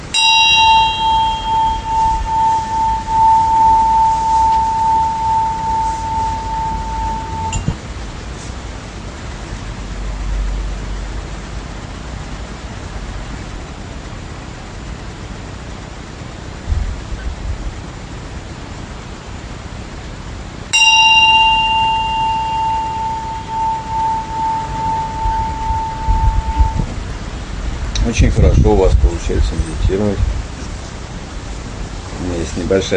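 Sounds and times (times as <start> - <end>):
small meditation bell struck: 0.0 - 7.8, 20.7 - 27.0
low rumble: 0.0 - 32.9
soft hiss: 0.0 - 32.9
speech: 28.2 - 30.4, 32.6 - 32.9.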